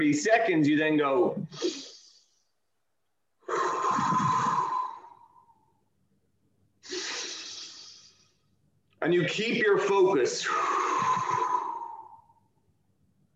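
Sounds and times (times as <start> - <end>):
speech: 0.0 - 1.9, 9.0 - 10.8
airy nasal breathing close to the mic: 1.5 - 2.2, 3.5 - 5.1, 6.8 - 8.4.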